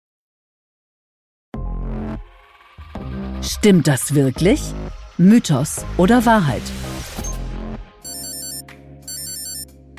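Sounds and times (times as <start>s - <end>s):
speech: 3.4s - 6.9s
smartphone alarm ringing in electronic tone bursts: 8.0s - 9.7s.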